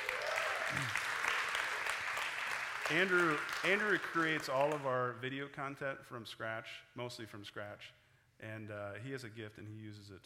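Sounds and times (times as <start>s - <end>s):
crowd applauding: 0.0s - 4.8s
speech: 0.7s - 1.0s, 2.9s - 10.2s.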